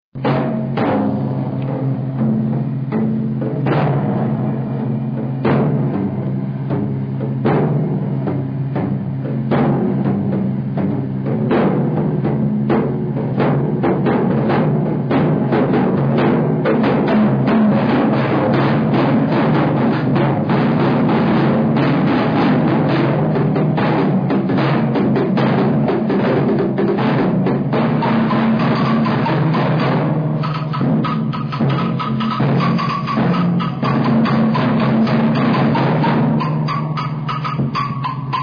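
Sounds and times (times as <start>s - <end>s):
percussion: 0.1s - 38.4s.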